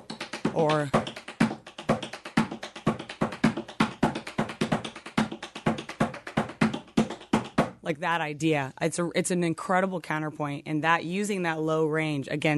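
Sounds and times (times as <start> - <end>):
tap dance steps in a paddle-and-roll pattern with toe clicks and heel drops: 0.0 - 7.8
speech: 0.6 - 1.0, 7.9 - 12.5.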